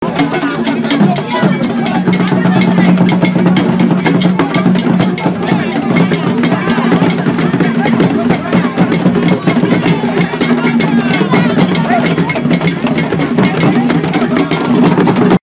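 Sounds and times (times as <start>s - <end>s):
traditional Adowa dance music performance: 0.0s - 15.4s.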